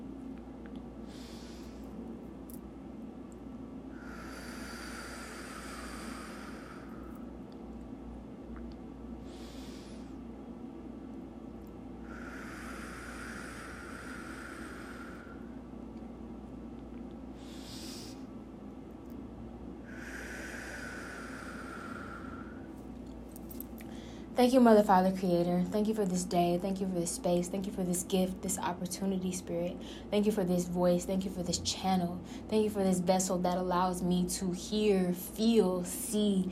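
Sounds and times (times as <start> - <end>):
steady low hum: 0.0 - 36.5
slow deep breaths in a guided session: 1.0 - 2.0, 3.9 - 7.4, 9.2 - 10.3, 12.0 - 15.7, 17.3 - 18.4, 19.8 - 22.8, 23.8 - 24.3, 29.8 - 30.1
speech: 24.4 - 36.5.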